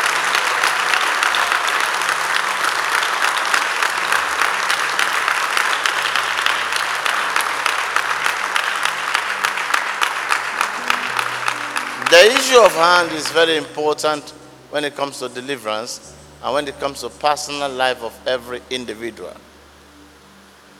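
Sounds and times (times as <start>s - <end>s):
crowd applauding: 0.0s - 14.2s
speech: 12.2s - 19.5s.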